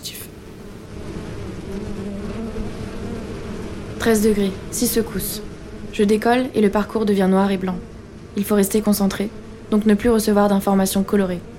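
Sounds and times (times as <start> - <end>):
many bees buzzing: 0.0 - 11.5
speech: 4.0 - 11.5.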